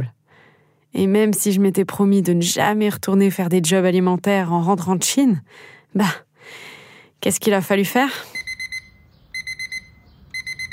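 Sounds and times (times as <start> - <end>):
speech: 0.9 - 8.4
alarm clock ringing with sharp high electronic beeps: 8.3 - 10.7.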